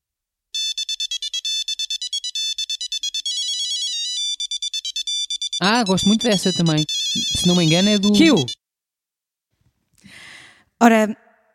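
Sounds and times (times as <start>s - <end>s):
mobile phone ringtone playing an electronic classical tune: 0.6s - 8.6s
speech: 5.6s - 8.6s, 10.8s - 11.2s.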